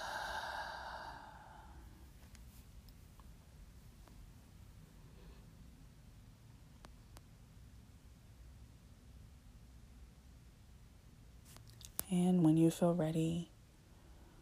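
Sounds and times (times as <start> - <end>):
deep breath in through nose, out through mouth: 0.0 - 2.1
quiet low hum: 0.0 - 14.4
speech: 12.1 - 13.5.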